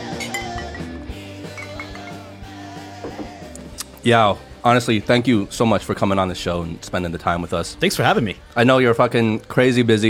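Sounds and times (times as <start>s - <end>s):
drinking glasses clinking together in a toast: 0.0s - 2.2s
speech: 4.0s - 10.0s.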